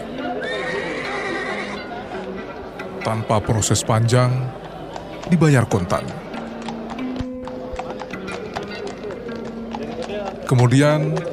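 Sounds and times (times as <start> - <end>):
murmur of voices: 0.0 - 11.3
horse neighing: 0.3 - 1.9
speech: 3.0 - 4.7, 5.3 - 6.3, 10.5 - 11.3
horse hooves clip-clopping as it rides off: 4.5 - 11.3.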